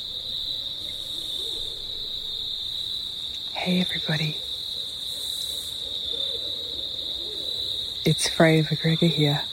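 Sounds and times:
two barred owls hooting back and forth: 0.0s - 2.8s, 4.0s - 8.2s
steady high-pitched insect drone at night: 0.0s - 9.5s
speech: 3.6s - 4.4s, 8.1s - 9.5s.

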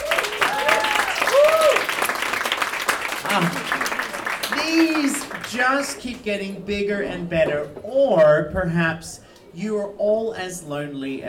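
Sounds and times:
cheers and whoops: 0.0s - 2.2s
crowd applauding: 0.0s - 6.0s
speech: 3.4s - 3.8s, 4.7s - 11.2s.

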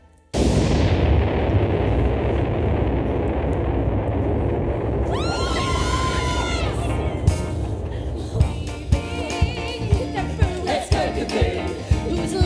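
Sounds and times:
sharp cracks: 0.3s - 9.0s
small demonstration bomb explosion roar: 0.3s - 12.3s.

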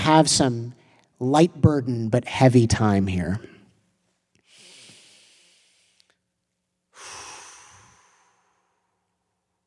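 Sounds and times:
speech: 0.1s - 3.5s
deep breathing during a prayer: 4.4s - 6.3s, 6.9s - 9.2s.

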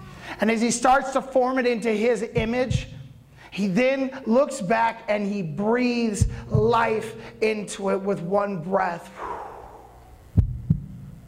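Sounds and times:
faint hum: 0.0s - 11.2s
speech: 0.3s - 9.4s
heartbeat: 2.4s - 3.0s, 6.2s - 6.9s, 10.3s - 11.2s.

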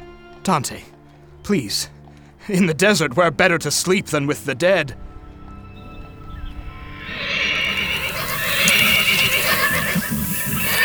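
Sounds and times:
speech: 0.4s - 5.1s
rough rumbling background: 5.8s - 10.8s
horses neighing and whinnying: 5.9s - 10.8s.

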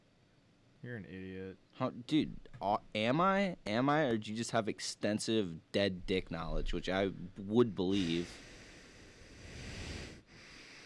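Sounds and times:
speech: 0.8s - 8.6s
heavy breathing into a microphone: 7.8s - 10.8s.

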